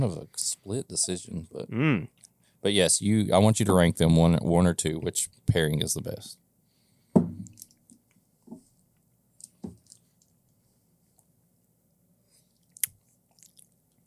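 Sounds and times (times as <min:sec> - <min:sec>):
speech: 0:00.0 - 0:06.4
soft crunchy chewing of a cookie: 0:12.5 - 0:14.0
crisp bite into a cookie: 0:12.6 - 0:14.0.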